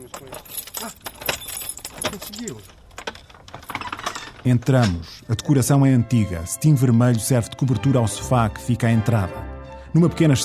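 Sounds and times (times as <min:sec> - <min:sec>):
speech: 0:00.0 - 0:02.8, 0:04.4 - 0:10.4
keys jangling and clicking in a stubborn theatre door lock: 0:00.0 - 0:05.5.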